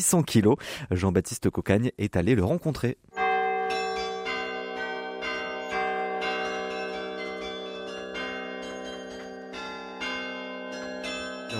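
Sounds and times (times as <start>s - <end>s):
speech: 0.0s - 3.2s
carillon bells playing a melody: 3.1s - 11.5s.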